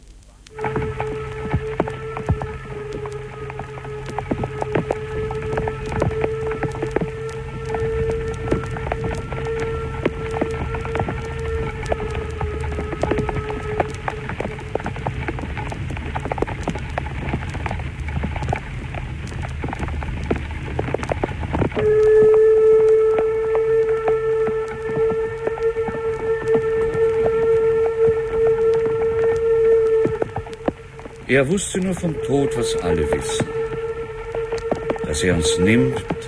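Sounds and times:
steady pouring rain: 0.0s - 36.2s
narrow-gauge locomotive hauling a passenger train on the Trans-Harz line: 31.2s - 34.1s
speech: 31.4s - 33.6s, 35.2s - 36.2s.

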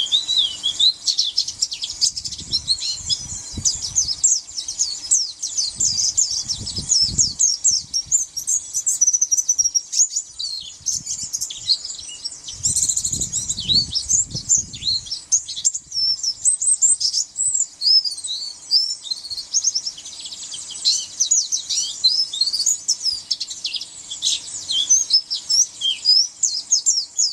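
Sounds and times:
white-eye song with high thin twittering and warbled notes: 0.0s - 27.3s.

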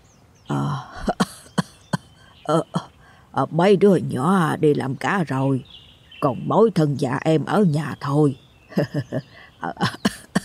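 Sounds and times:
person imitating an old man's harsh hacking cough: 0.9s - 2.1s, 9.8s - 10.4s
speech: 2.5s - 2.8s, 3.4s - 10.0s.

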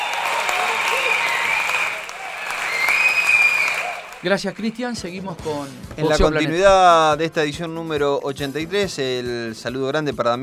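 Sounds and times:
studio audience applauding a quiz winner: 0.0s - 5.0s
speech: 4.2s - 10.4s.

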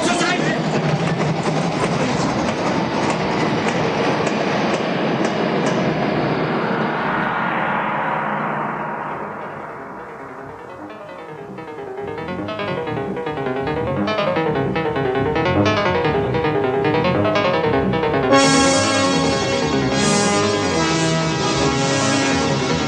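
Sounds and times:
rhythmic wheel clatter and metallic rail noise of underground train: 0.0s - 6.5s
underground train approaching through a tunnel: 0.0s - 22.8s.

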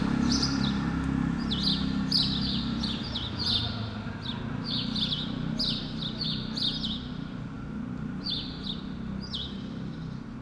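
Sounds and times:
sparrows chirping on Rue Keyenveld in Ixelles, Brussels, Belgium: 0.1s - 0.8s, 1.4s - 7.3s, 8.2s - 10.3s.

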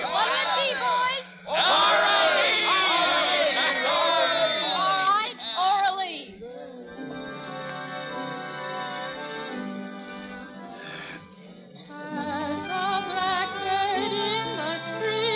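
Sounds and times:
crowd yelling and whooping for a performer: 0.0s - 5.2s
steady murmur of voices: 0.0s - 15.3s.

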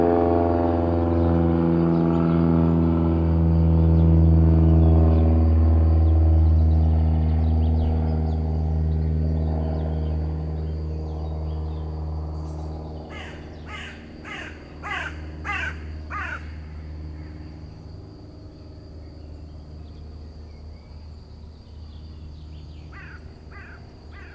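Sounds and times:
low droning aircraft rumble: 0.0s - 24.3s
rook cawing under a magnolia in a park in Tresserve France: 13.1s - 17.8s, 22.9s - 24.3s.

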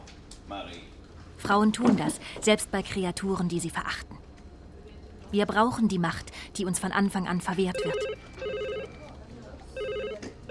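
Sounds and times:
low murmur: 0.0s - 10.4s
speech: 0.5s - 4.2s, 5.3s - 8.2s
telephone ringing in warbling bursts: 7.7s - 10.4s.

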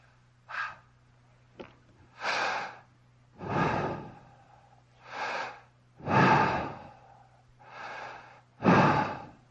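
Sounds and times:
faint low hum: 0.0s - 9.4s
person breathing in: 2.2s - 9.4s.

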